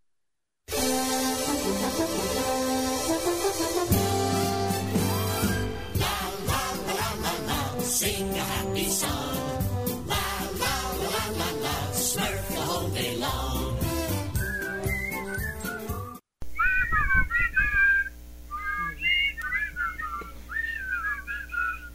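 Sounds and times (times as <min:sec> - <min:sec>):
instrumental music: 0:00.7 - 0:16.2
whistled cartoon theme intro: 0:03.5 - 0:06.0, 0:14.0 - 0:21.9.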